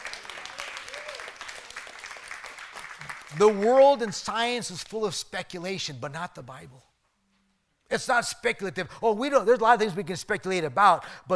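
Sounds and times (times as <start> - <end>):
crowd applause: 0.0 - 3.6
speech: 3.3 - 6.9, 7.9 - 11.3.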